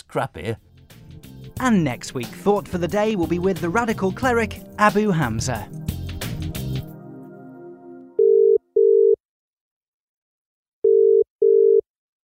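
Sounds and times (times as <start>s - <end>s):
speech: 0.1s - 0.7s, 1.6s - 5.8s
musical sting: 0.9s - 8.2s
telephone ringing unanswered on phone-in line: 8.2s - 9.2s, 10.8s - 11.8s.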